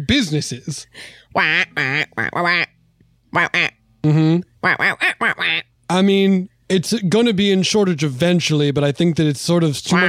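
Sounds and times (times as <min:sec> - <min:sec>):
speech: 0:00.0 - 0:10.0
person imitating duck quacks: 0:01.4 - 0:05.7, 0:09.9 - 0:10.0.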